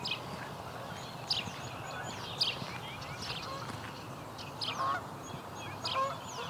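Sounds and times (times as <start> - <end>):
dawn chorus of smaller birds including house sparrows chirping and twittering: 0.0 - 6.4
Canada geese honking at wetlands: 4.8 - 5.0, 5.8 - 6.4.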